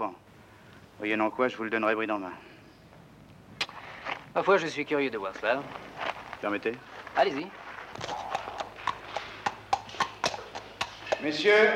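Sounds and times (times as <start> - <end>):
faint hum: 0.0 - 11.7
speech: 1.0 - 2.5, 4.4 - 8.2, 11.2 - 11.7
ridden horse hooves clip-clopping on a hard floor in a great hall: 7.9 - 11.4.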